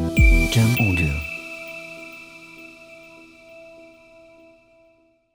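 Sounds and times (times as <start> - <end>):
hi-tech future logo jingle: 0.2 - 4.4.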